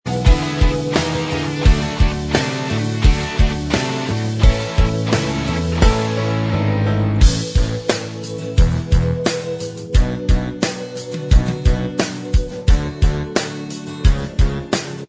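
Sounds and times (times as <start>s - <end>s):
instrumental music: 0.1s - 15.0s.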